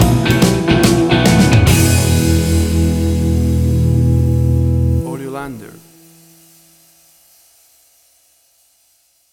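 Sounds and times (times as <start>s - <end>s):
blues shuffle country music stinger: 0.0s - 6.4s.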